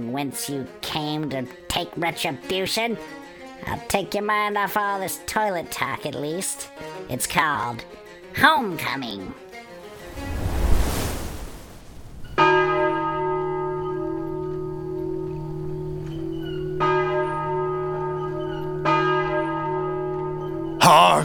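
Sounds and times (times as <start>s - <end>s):
speech: 0.0s - 9.6s
whoosh of surf-like noise: 9.8s - 12.4s
large town church bell tolling: 12.4s - 20.8s.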